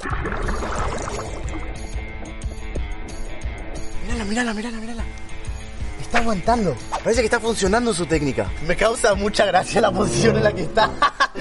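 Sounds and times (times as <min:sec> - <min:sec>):
water splashing and churning as a woman submerges with a plastic drum: 0:00.0 - 0:02.1
water bubbling from breathing through a hose: 0:00.0 - 0:02.4
speech: 0:04.2 - 0:05.2, 0:06.1 - 0:11.3
laughter: 0:09.7 - 0:11.3.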